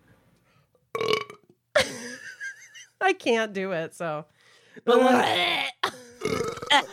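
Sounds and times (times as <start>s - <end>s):
wet squishy burps: 0.9s - 1.5s, 5.0s - 6.9s
speech: 3.0s - 5.7s, 6.7s - 6.9s.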